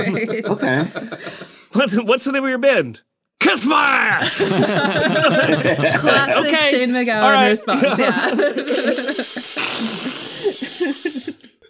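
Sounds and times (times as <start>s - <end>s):
laughter: 0.0s - 1.6s, 4.0s - 11.6s
speech: 0.0s - 11.5s
people hissing like snakes: 8.4s - 11.6s.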